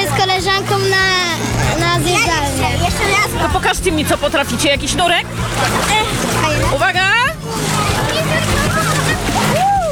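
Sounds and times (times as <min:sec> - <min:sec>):
churning sloshing water in an open-air swimming pool: 0:00.0 - 0:09.9
speech: 0:03.6 - 0:07.2
girls splashing into an open-air swimming pool in Wrocław: 0:07.5 - 0:09.9.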